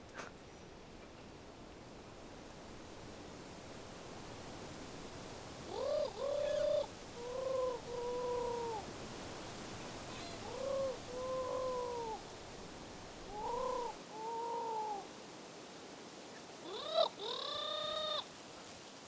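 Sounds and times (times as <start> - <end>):
steady hiss: 0.0 - 19.0
voice imitating a turtle dove's cooing at the Roche Percée: 5.7 - 8.8, 10.2 - 12.2, 13.3 - 15.1, 16.7 - 18.2.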